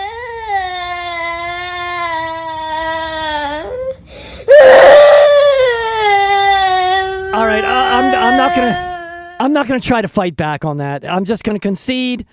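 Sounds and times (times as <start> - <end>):
long drawn-out whine: 0.0 - 9.4
speech: 8.6 - 8.9, 9.5 - 12.3.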